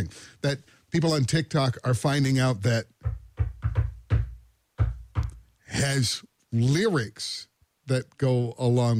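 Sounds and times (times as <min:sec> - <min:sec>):
speech: 0:00.0 - 0:03.2, 0:05.7 - 0:08.9
knuckles knocking on a door in a rhythm: 0:03.0 - 0:05.4.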